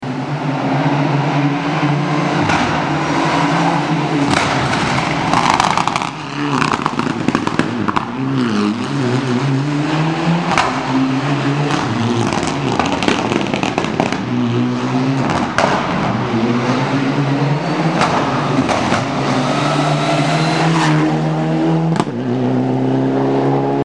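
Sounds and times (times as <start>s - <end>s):
Mitsubishi Lancer Evo IX car: 0.0s - 23.8s.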